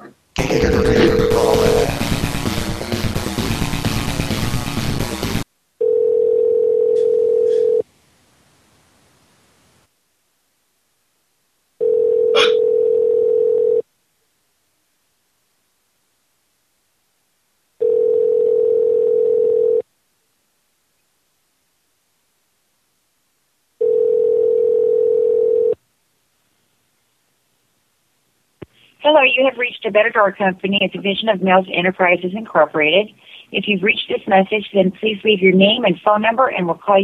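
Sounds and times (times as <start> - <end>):
hissing static: 0.0 - 5.5, 28.6 - 37.0
speech: 0.1 - 1.0, 29.2 - 37.0
telephone ringback tone while calling a company line: 5.8 - 7.8, 11.8 - 13.8, 17.8 - 19.8, 23.8 - 25.8.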